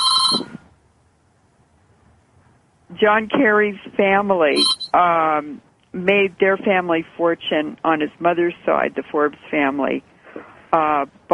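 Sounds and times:
mobile phone ringtone: 0:00.0 - 0:00.6, 0:04.6 - 0:05.0
speech: 0:03.0 - 0:10.1, 0:10.7 - 0:11.3.

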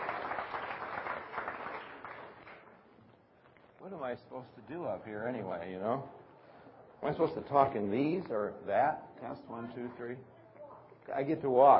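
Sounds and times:
crowd applauding: 0:00.0 - 0:02.8
speech: 0:03.9 - 0:06.2, 0:07.0 - 0:10.3, 0:11.1 - 0:11.7.

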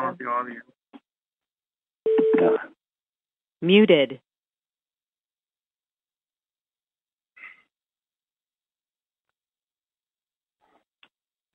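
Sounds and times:
speech: 0:00.1 - 0:00.8, 0:02.0 - 0:02.7, 0:03.6 - 0:04.2
incoming phone line call tone: 0:02.1 - 0:02.7.

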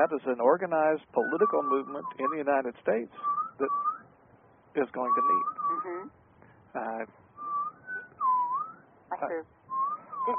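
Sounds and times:
speech: 0:00.0 - 0:03.9, 0:04.8 - 0:06.2, 0:06.8 - 0:07.2, 0:09.2 - 0:09.6
person whistling a wavering sliding tune: 0:01.2 - 0:02.4, 0:03.2 - 0:04.1, 0:05.1 - 0:06.0, 0:07.4 - 0:08.8, 0:09.7 - 0:10.3.

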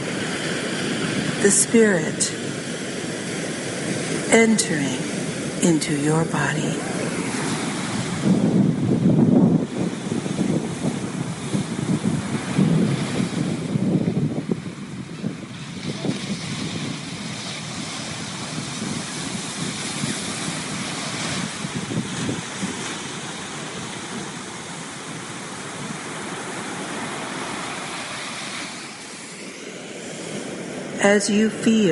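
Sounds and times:
ocean waves washing onto the shore: 0:00.0 - 0:31.8
wind: 0:00.0 - 0:31.8
speech: 0:01.4 - 0:02.7, 0:04.3 - 0:07.0, 0:31.1 - 0:31.8.

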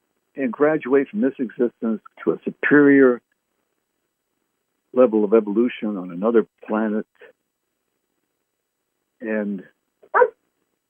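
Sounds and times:
speech: 0:00.4 - 0:03.2, 0:05.0 - 0:07.4, 0:09.2 - 0:10.4
dog whining outside a closed door: 0:10.0 - 0:10.4.

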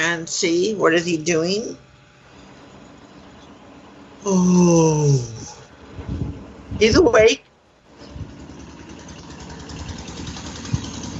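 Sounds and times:
speech: 0:00.0 - 0:01.9, 0:04.2 - 0:05.6, 0:06.8 - 0:07.5
car engine rumbling as the car drives by: 0:04.3 - 0:11.1.

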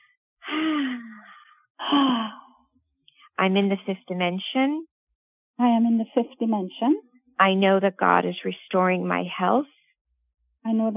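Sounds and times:
deep sighing breaths during a guided breathing exercise: 0:00.4 - 0:02.6
speech: 0:00.5 - 0:01.1, 0:01.8 - 0:02.3, 0:03.4 - 0:04.9, 0:05.6 - 0:09.8, 0:10.6 - 0:10.9.

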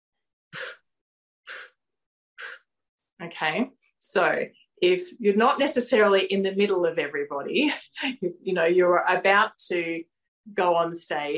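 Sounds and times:
short sharp breaths forced in through the nose: 0:01.5 - 0:01.8, 0:02.4 - 0:02.7
speech: 0:03.3 - 0:11.3.

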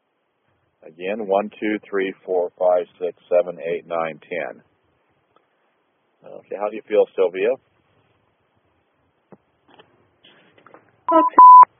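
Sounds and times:
speech: 0:00.8 - 0:04.7, 0:06.2 - 0:07.7, 0:11.1 - 0:11.7
telephone tones announcing an incoming call: 0:11.1 - 0:11.6.

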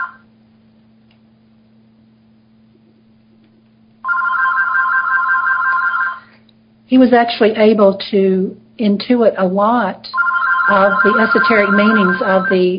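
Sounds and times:
telephone ringing with a bright buzzing bell: 0:00.0 - 0:00.2, 0:04.0 - 0:06.3, 0:10.2 - 0:12.7
speech: 0:06.9 - 0:12.7.

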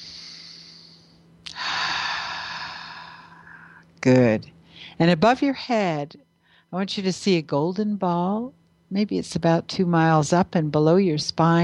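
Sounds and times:
person taking deep slow breaths: 0:00.0 - 0:03.8
speech: 0:04.0 - 0:11.6.

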